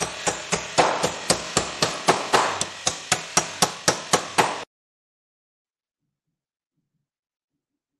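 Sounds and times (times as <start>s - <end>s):
hammering: 0.0s - 4.7s.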